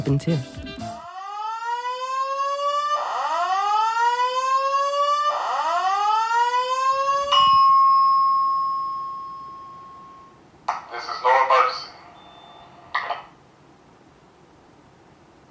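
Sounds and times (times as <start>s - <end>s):
speech: 0.0s - 0.6s
electronic hotel fire alarm on a Las Vegas hotel floor: 1.0s - 10.4s, 12.1s - 12.9s.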